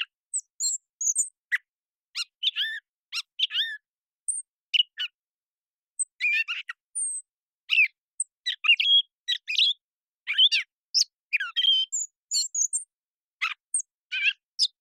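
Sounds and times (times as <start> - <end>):
Gray Catbird Dumetella carolinensis singing: 0.0 - 5.2, 6.0 - 14.7.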